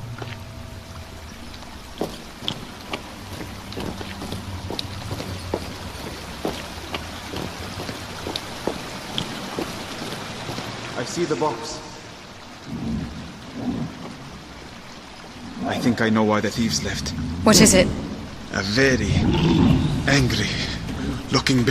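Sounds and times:
waterfall rushing: 0.0 - 21.6
speech: 11.1 - 11.9, 15.8 - 18.0, 18.6 - 20.7, 21.3 - 21.6.

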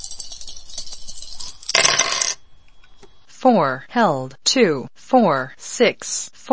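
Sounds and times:
video game dice rolling: 0.7 - 2.4
speech: 3.4 - 6.5.

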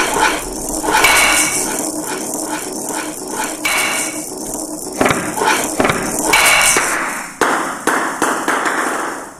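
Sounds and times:
bright steady noise: 0.0 - 9.3
table tennis video game ball and paddle clicks and knocks: 5.0 - 9.3.

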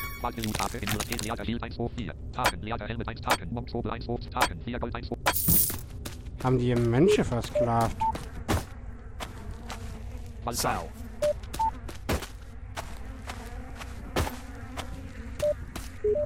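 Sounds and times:
speech: 0.2 - 5.7, 6.4 - 8.2, 10.4 - 11.0
insects buzzing: 5.9 - 16.2.

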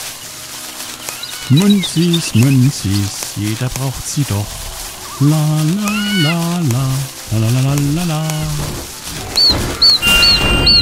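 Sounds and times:
steady hiss: 0.0 - 10.8
loud bird calling with short high whistled chirps: 1.0 - 2.8, 5.8 - 6.3, 9.4 - 10.8
speech: 1.5 - 10.3.

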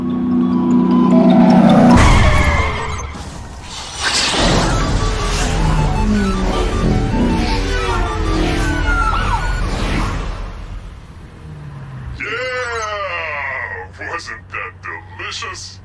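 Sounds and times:
ice cream truck engine roaring: 0.0 - 15.8
ice cream truck tires screeching: 0.7 - 15.5
loud smashing crash: 1.9 - 11.0.

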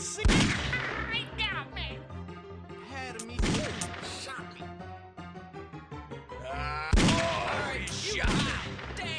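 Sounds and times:
gunfire in a video game: 0.3 - 1.0, 3.2 - 4.2, 7.0 - 9.0.

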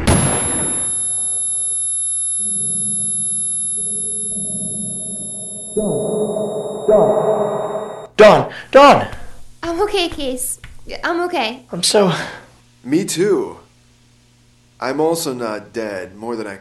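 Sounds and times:
loud video game gunshot: 0.0 - 0.8
sustained high ringing tone: 0.0 - 8.1
low drone: 0.6 - 8.1
speech: 5.8 - 6.3, 6.9 - 7.6, 8.2 - 9.2, 9.8 - 13.6, 14.8 - 16.5.

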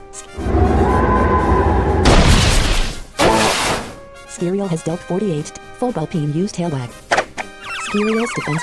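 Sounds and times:
Wind Force attack effect rushing booming roar in a turn-based video game battle: 0.3 - 3.1
speech: 4.4 - 7.0, 7.9 - 8.6.

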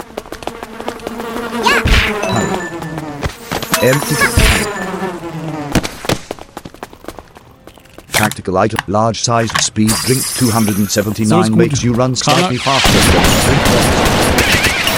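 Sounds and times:
video-game bee buzzing with wavering drone: 0.0 - 6.6, 10.4 - 14.9
speech: 3.8 - 4.7, 8.4 - 14.9.

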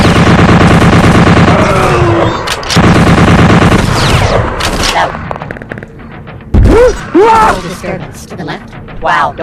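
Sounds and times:
turret gun fire in a video game: 0.0 - 5.0
speech: 7.6 - 9.4.

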